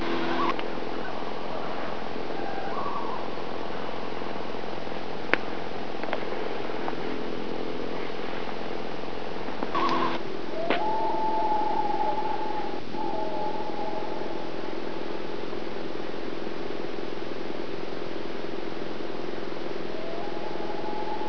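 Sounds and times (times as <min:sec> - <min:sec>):
loon wailing at Spruce Lake: 0:00.0 - 0:03.8, 0:09.8 - 0:15.0, 0:19.8 - 0:21.2
low droning background: 0:00.0 - 0:21.2.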